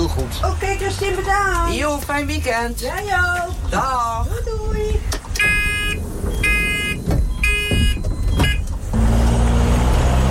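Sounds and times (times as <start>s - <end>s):
bus engine rumbling: 0.0s - 10.3s
speech: 1.0s - 5.1s
electronic beeps: 5.4s - 8.7s.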